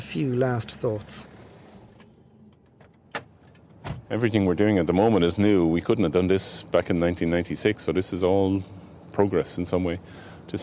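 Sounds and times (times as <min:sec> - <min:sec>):
car idling as it rolls to a stop in a car park: 0:00.0 - 0:10.6
speech: 0:00.1 - 0:01.3, 0:04.1 - 0:10.6
sharp clunks and clicks: 0:01.9 - 0:04.1.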